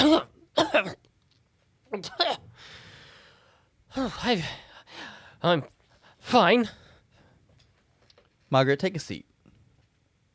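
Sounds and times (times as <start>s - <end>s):
woman walking away coughing: 0.0s - 1.0s, 2.0s - 2.5s
speech: 0.6s - 1.0s, 1.9s - 2.4s, 3.9s - 4.6s, 5.4s - 6.8s, 8.5s - 9.3s
woman's long breathy exhale: 2.6s - 3.7s.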